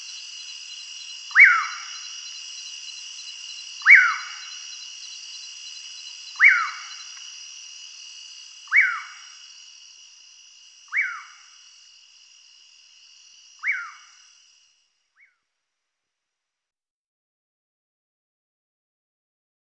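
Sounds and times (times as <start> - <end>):
Common Pauraque calling in the Pantanal: 0.0 - 7.3, 8.6 - 9.5, 10.9 - 11.6, 13.6 - 14.3, 15.1 - 15.4
steady high hiss: 0.0 - 14.8.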